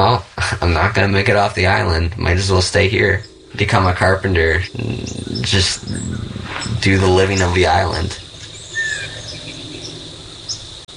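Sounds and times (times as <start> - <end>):
speech: 0.0 - 8.2
outdoor hiss: 0.0 - 10.9
insect-like buzzing: 0.7 - 10.9
northern waterthrush chip call: 4.4 - 10.8.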